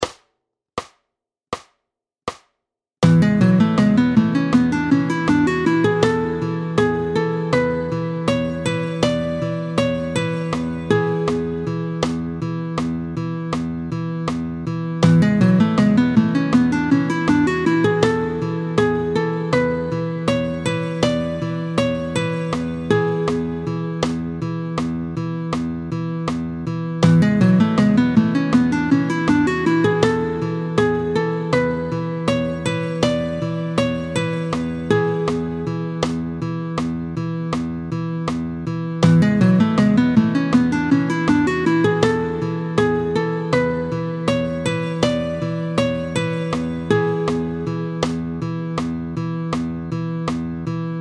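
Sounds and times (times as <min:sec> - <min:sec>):
music in the mixolydian mode on E: 0:03.0 - 0:51.0.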